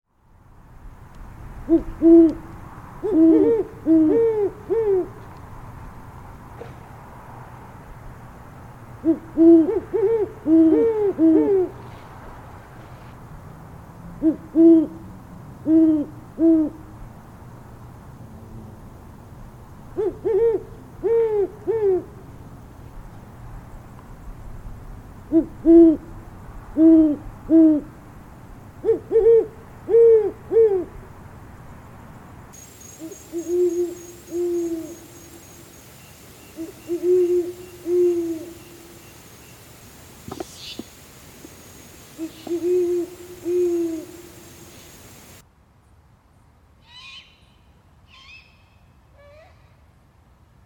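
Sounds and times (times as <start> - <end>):
Great Horned Owl hooting: 1.7 - 2.4, 3.0 - 5.2, 9.0 - 11.8, 14.2 - 15.0, 15.6 - 16.8, 20.0 - 22.2, 26.8 - 27.9, 28.8 - 30.9, 32.6 - 39.7, 40.3 - 45.4.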